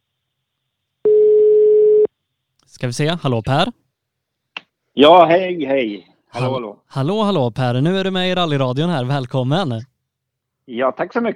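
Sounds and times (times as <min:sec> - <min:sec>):
steady mid-pitched telephone tone: 0:01.0 - 0:02.1
speech: 0:02.7 - 0:03.8, 0:05.0 - 0:09.9, 0:10.7 - 0:11.3.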